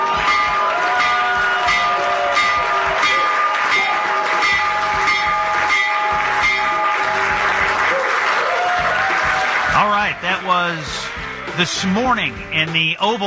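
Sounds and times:
crowd clapping and cheering: 0.0s - 13.2s
stock exchange opening electric bell ringing: 0.1s - 7.7s
speech: 11.6s - 13.2s.

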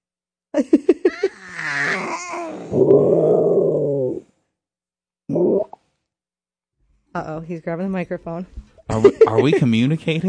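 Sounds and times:
speech: 0.6s - 0.8s, 7.2s - 10.2s
adult voice imitating a dinosaur roar for a little boy: 1.9s - 4.3s
laughter: 8.9s - 10.2s.

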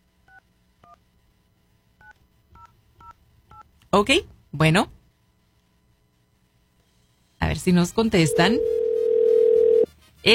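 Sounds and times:
speech: 4.0s - 5.0s, 7.6s - 8.8s
touch-tone beeps dialing a telephone number: 8.2s - 9.9s.

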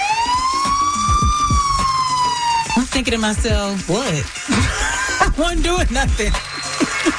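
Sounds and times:
police car siren wailing: 0.0s - 3.0s
speech: 3.0s - 4.7s, 5.4s - 7.1s
laughter: 4.5s - 5.6s, 6.6s - 7.1s.

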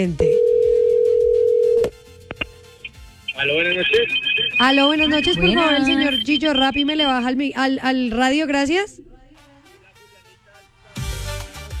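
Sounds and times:
speech: 0.0s - 0.3s, 3.4s - 9.0s
single-pitched ringback tone of an outgoing phone call: 0.4s - 7.4s.

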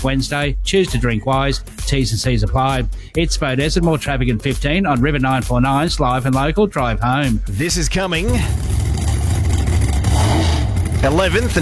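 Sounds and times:
speech: 0.0s - 8.7s, 11.0s - 11.6s
high-revving Pro Stock drag racing car engine roaring: 8.4s - 11.6s.

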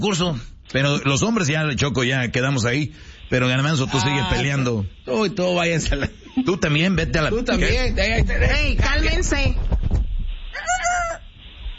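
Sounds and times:
speech: 0.0s - 9.7s
rooster crowing: 3.9s - 4.5s, 10.6s - 11.3s.

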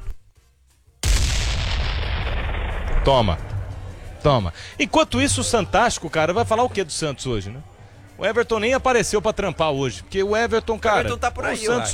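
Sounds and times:
bomb explosion sound effect: 1.0s - 4.5s
speech: 3.1s - 3.5s, 4.2s - 11.9s.

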